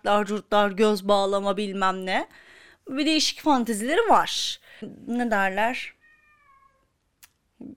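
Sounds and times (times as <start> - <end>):
speech: 0.0 - 6.0, 7.6 - 7.7
cat meowing: 6.0 - 7.0.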